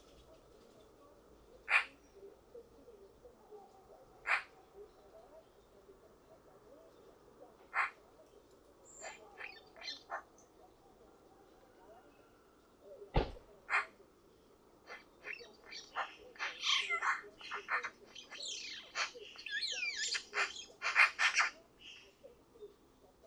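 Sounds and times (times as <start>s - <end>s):
Eurasian magpie Pica pica giving harsh rasping chatter: 1.6s - 2.2s, 3.4s - 5.0s, 7.5s - 8.1s, 8.8s - 11.0s, 14.9s - 23.2s.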